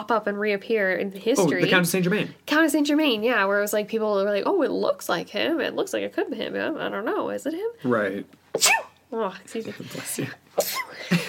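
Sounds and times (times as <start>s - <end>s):
speech: 0.0s - 11.2s
small mouse-like squeaky sneeze: 8.5s - 9.0s, 10.6s - 11.0s.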